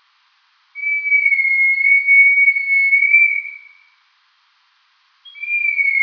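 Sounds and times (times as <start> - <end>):
rat call, long flat whistled tone: 0.8 - 4.0, 5.2 - 6.0.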